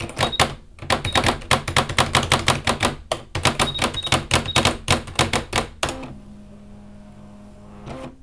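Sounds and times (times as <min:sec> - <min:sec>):
keyboard typing in an office: 0:00.0 - 0:06.0.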